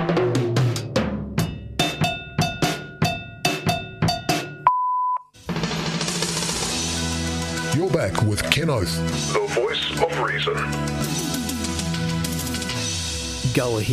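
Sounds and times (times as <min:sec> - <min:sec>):
drum pattern: 0:00.0 - 0:04.7, 0:05.4 - 0:13.9
electronic beep: 0:04.7 - 0:05.3
speech: 0:07.9 - 0:11.5, 0:13.6 - 0:13.9.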